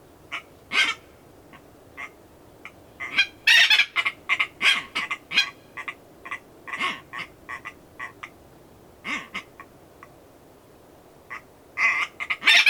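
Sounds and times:
Red-billed tropicbird giving harsh screechy calls: 0.3 - 1.0, 3.0 - 8.2, 11.3 - 12.6.

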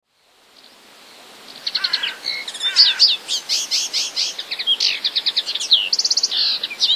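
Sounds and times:
common linnet twittering song: 1.5 - 6.9.

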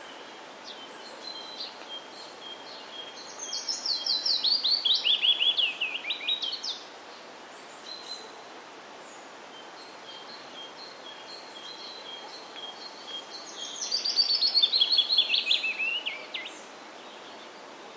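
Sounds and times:
willow warbler singing: 0.0 - 6.9, 9.6 - 17.6.

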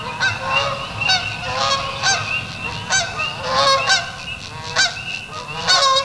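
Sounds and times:
Canada goose: 0.0 - 6.0.

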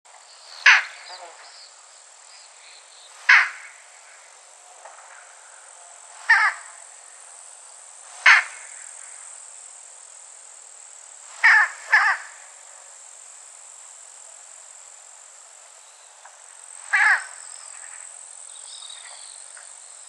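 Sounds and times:
Coloeus dauuricus calls: 0.4 - 4.4, 6.3 - 6.8, 8.2 - 8.8, 11.4 - 12.6, 16.8 - 18.1.

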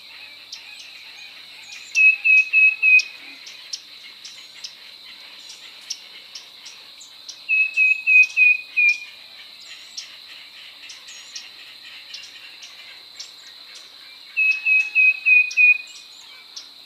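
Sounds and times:
steady high insect drone: 0.0 - 16.8
tufted titmouse Baeolophus bicolor whistled song: 1.7 - 3.2, 7.5 - 9.1, 14.4 - 16.0.

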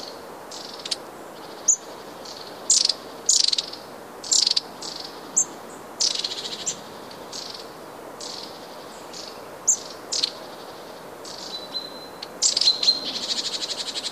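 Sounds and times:
long-tailed tit calling: 0.0 - 14.0.

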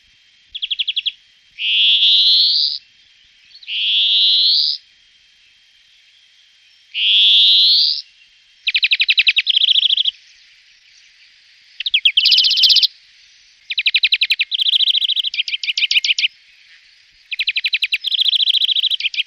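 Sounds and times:
greenfinch singing and whistling: 0.5 - 2.8, 3.5 - 4.8, 7.0 - 8.0, 8.7 - 10.1, 11.8 - 12.9, 13.7 - 16.3, 17.3 - 19.2.

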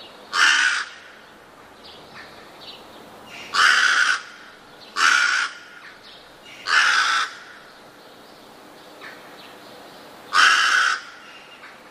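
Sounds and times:
soft bird calls: 0.0 - 11.8
rook giving rough croaking caws: 0.3 - 1.4, 3.3 - 7.8, 9.0 - 9.4, 10.3 - 11.8.

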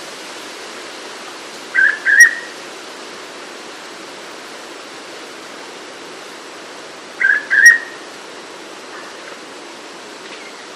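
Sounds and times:
Hooded pitta giving a double whistle: 7.2 - 8.0.

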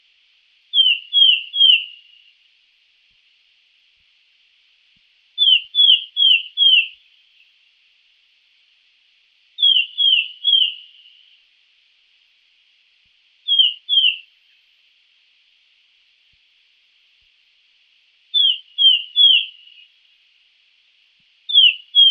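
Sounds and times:
Sultan tit ringing downslurred whistles: 0.8 - 2.0, 5.4 - 7.0, 9.6 - 11.0, 13.5 - 14.2, 18.4 - 19.8, 21.5 - 22.0.

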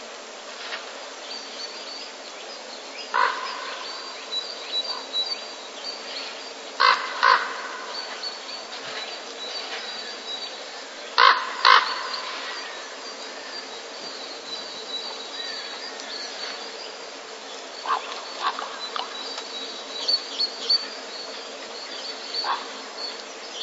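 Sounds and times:
steady high insect-like whine: 0.0 - 23.6
common raven courtship calls: 3.1 - 4.1, 6.8 - 8.2, 11.2 - 12.8, 17.8 - 19.2, 22.3 - 23.0.

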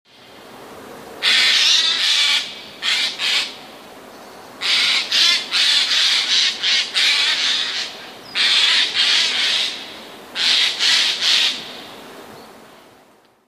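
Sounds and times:
jay calling: 1.2 - 3.6, 4.6 - 11.7.

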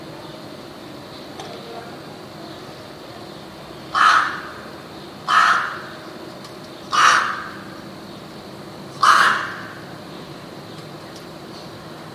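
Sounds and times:
rook cawing: 3.9 - 6.0, 6.9 - 7.8, 9.0 - 10.0.

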